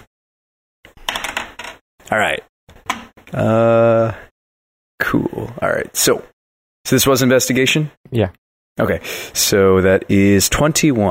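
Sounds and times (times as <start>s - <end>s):
six-sided die clattering across a hard surface: 1.0s - 1.8s
speech: 2.1s - 2.5s, 3.3s - 4.2s, 5.1s - 11.0s.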